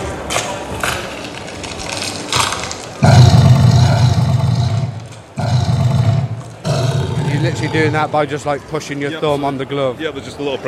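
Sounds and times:
crunchy bone-cracking hits with dull low thud: 0.3 - 7.6
monstrous creature roar effect: 3.0 - 8.2
speech: 7.8 - 10.6.

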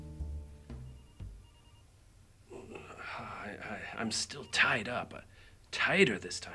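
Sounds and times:
cell phone electronic ringtone: 0.8 - 1.9, 3.9 - 4.8
speech: 3.6 - 6.5.

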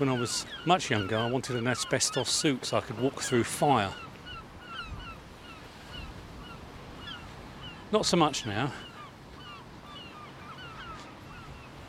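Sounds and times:
speech: 0.0 - 4.1, 7.9 - 8.9
sea waves at the shoreline: 0.0 - 11.8
gusting wind at the shoreline on a cold July day: 3.9 - 11.8.

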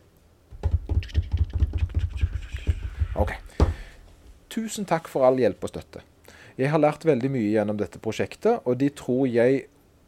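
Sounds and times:
slightly louder final drum hit: 0.6 - 3.9
speech: 3.2 - 3.4, 4.6 - 9.7.

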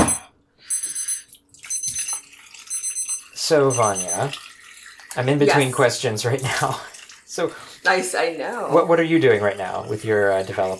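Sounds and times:
darkroom timer alarm in high-pitched electronic bursts: 0.0 - 4.4
speech: 3.5 - 4.5, 5.2 - 10.7.

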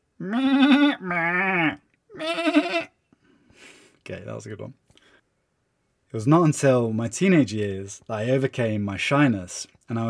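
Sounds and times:
speech: 0.2 - 1.6, 4.1 - 4.9, 6.1 - 10.0
goat bleating: 0.2 - 3.0.

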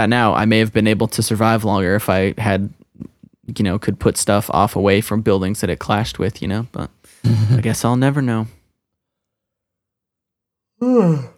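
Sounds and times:
speech: 0.0 - 2.8, 3.5 - 8.6, 10.8 - 11.3
person yawning: 10.8 - 11.3.

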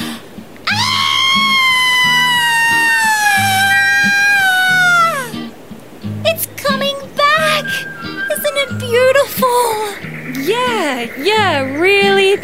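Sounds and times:
short excited voices: 0.6 - 5.4, 6.2 - 12.4
person screaming in panic on spotting a wedge-tailed eagle: 0.7 - 5.4.

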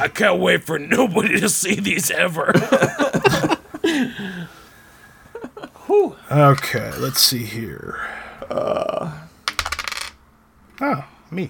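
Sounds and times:
speech: 0.0 - 4.6, 5.9 - 9.2, 10.8 - 11.4
laughter: 1.2 - 4.6, 5.2 - 6.1
dice clattering and tumbling across a hard tabletop: 9.4 - 10.2.

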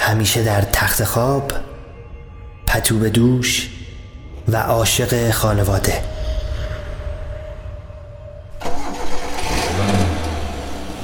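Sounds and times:
speech: 0.1 - 1.7, 2.7 - 3.8, 4.5 - 6.2
1948 Pontiac car engine starting and idling: 6.1 - 11.0.

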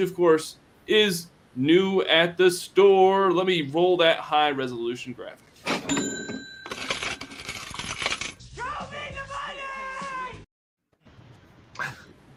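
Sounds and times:
speech: 0.0 - 6.3
cash register ring: 5.7 - 8.0
coins jangling: 6.6 - 8.4.

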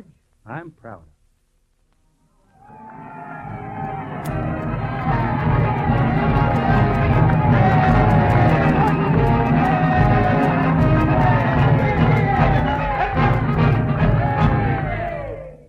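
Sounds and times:
speech: 0.0 - 1.2
large crowd cheering at a building dedication: 2.4 - 15.6
band playing at a building dedication: 3.1 - 15.3.

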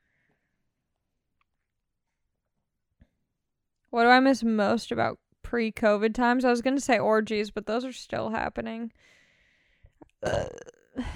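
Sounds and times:
speech: 3.9 - 9.2, 10.2 - 11.1
person burping into the microphone: 10.2 - 11.1.

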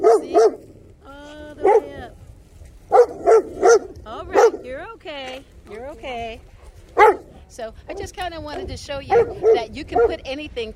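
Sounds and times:
excited dogs barking: 0.0 - 0.8, 1.6 - 2.1, 2.9 - 4.8, 6.6 - 10.3
speech: 7.5 - 10.7.

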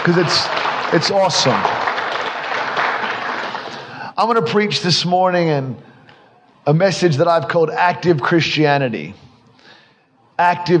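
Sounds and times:
speech: 0.0 - 1.8, 4.2 - 5.9, 6.6 - 9.2, 10.4 - 10.7
large audience applauding in a big room: 0.0 - 4.0.

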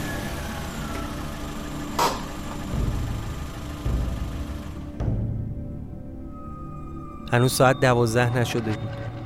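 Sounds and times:
car engine running as the car is driven into a house yard: 0.0 - 5.6
speech: 7.3 - 9.0.

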